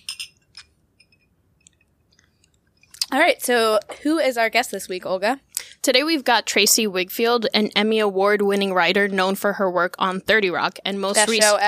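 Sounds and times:
glasses of bourbon drink clinking in a toast: 0.0 - 1.3
speech: 3.1 - 11.6.

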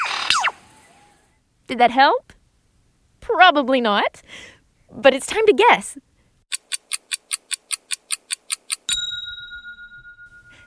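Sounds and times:
speech: 1.7 - 2.4, 3.2 - 6.1
lyrebird of Australia mimicking a ringing bell-like tone: 8.9 - 10.6.

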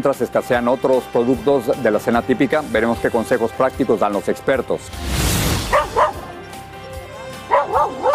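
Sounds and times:
speech: 0.0 - 5.2
dogs barking: 5.7 - 6.3, 7.4 - 8.1.

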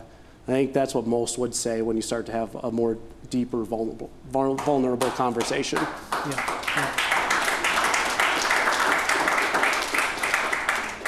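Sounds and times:
speech: 0.5 - 7.1
crowd applauding: 5.0 - 11.0.

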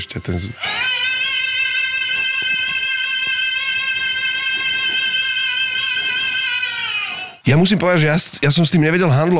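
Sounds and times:
speech: 0.0 - 0.8, 7.5 - 9.3
boy singing the closing high note of an opera aria: 0.6 - 7.4.

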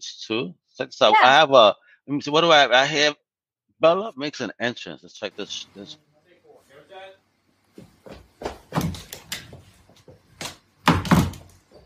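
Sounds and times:
speech: 0.3 - 3.2, 3.8 - 6.1
person bumping into a pull door, thudding and rattling: 10.9 - 11.6.

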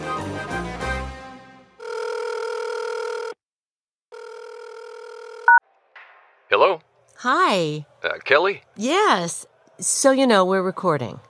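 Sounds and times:
telephone line ringing before a call connects: 1.8 - 3.4, 4.1 - 5.6
speech: 6.6 - 11.2.

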